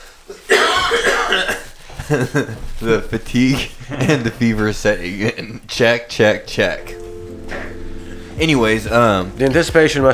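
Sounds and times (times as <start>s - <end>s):
dry raspy cough: 0.2s - 5.8s
speech: 2.1s - 7.0s, 8.4s - 10.1s.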